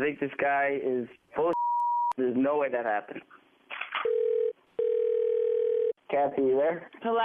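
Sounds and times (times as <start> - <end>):
speech: 0.0 - 1.6, 2.2 - 3.4, 6.1 - 7.2
telephone dial tone over the handset: 4.0 - 6.0.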